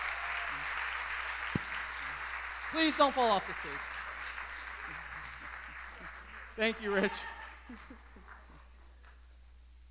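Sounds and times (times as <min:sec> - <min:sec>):
audience applause: 0:00.0 - 0:08.6
single sharp clap: 0:01.5 - 0:01.8
speech: 0:02.7 - 0:04.0, 0:06.6 - 0:08.0.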